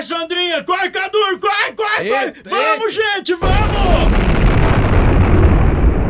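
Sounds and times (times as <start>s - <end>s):
speech: 0.1s - 4.3s
volcanic eruption explosion roar: 3.4s - 6.0s.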